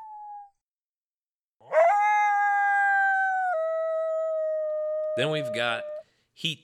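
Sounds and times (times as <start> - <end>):
lone female coyote howling and yelping: 1.6 - 6.0
speech: 5.2 - 6.6.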